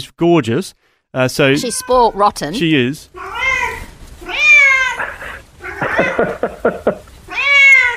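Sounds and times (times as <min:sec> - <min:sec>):
speech: 0:00.2 - 0:03.4, 0:06.2 - 0:07.0
female Bengal cat meowing and yowling: 0:01.6 - 0:02.4, 0:03.1 - 0:06.4, 0:07.3 - 0:07.9
laughter: 0:04.9 - 0:07.1.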